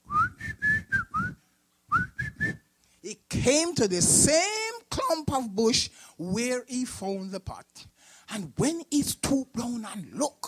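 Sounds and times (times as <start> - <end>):
man whistling a tune while walking: 0.0 - 2.7
speech: 3.1 - 10.4.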